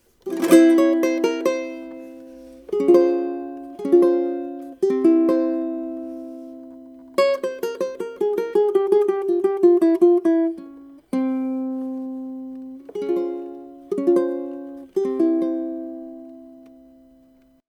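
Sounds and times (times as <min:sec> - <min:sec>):
ukulele playing a flamenco scale: 0:00.0 - 0:17.6.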